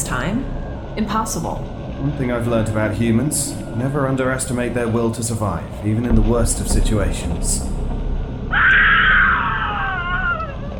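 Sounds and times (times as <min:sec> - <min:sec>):
speech: 0:00.0 - 0:07.8
steady noise: 0:00.0 - 0:08.8
high-pitched scream of a person in terror: 0:08.5 - 0:10.6.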